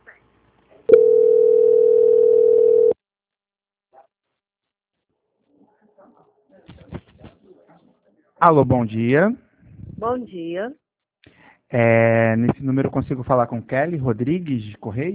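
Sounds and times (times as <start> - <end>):
telephone line tone while a call is transferred: 0.9 - 3.0
speech: 8.4 - 9.4, 10.0 - 10.8, 11.7 - 15.1.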